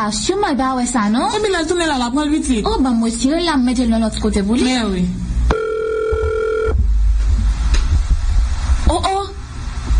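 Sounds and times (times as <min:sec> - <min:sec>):
speech: 0:00.0 - 0:05.2
low rumbling room noise: 0:00.0 - 0:09.9
telephone ringing with electronic tone: 0:05.5 - 0:06.8.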